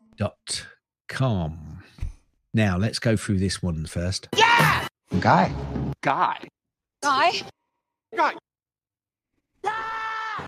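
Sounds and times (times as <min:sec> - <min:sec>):
speech: 0:00.2 - 0:08.4
person screaming: 0:04.4 - 0:04.9, 0:09.6 - 0:10.4.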